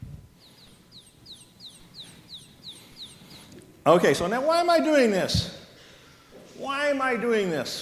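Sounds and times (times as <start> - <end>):
baby chick peeping: 0.3 - 3.8
speech: 3.9 - 5.6, 6.6 - 7.8.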